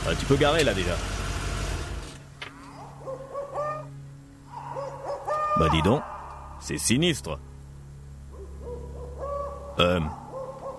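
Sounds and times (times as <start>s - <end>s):
speech: 0.1s - 1.1s, 5.6s - 7.5s, 9.8s - 10.2s
soft wavering owl hoots: 2.6s - 6.6s, 8.3s - 10.7s.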